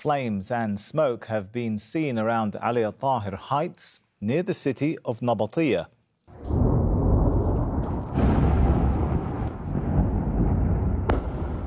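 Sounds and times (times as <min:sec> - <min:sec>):
speech: 0:00.0 - 0:06.6
airstrike explosions in southern Lebanon: 0:06.3 - 0:11.6.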